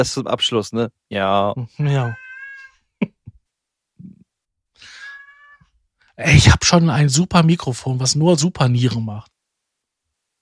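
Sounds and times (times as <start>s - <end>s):
speech: 0.0s - 2.2s, 6.2s - 9.3s
cat meowing: 2.0s - 2.8s, 4.9s - 5.8s.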